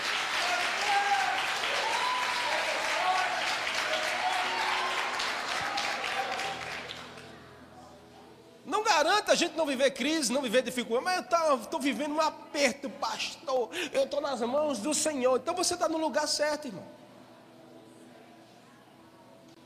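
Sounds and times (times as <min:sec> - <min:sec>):
congregation applauding: 0:00.0 - 0:07.4
speech: 0:09.2 - 0:17.0.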